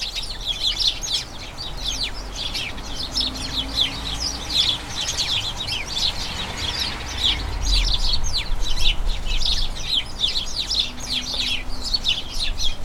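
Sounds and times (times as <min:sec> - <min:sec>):
flock of house sparrows chattering: 0:00.0 - 0:12.8.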